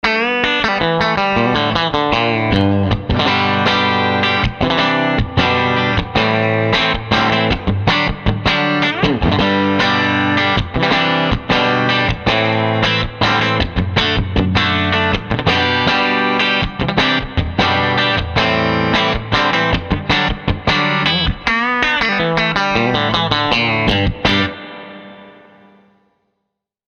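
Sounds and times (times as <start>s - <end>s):
clean overdrive electric guitar with country reverb: 0.0s - 26.1s.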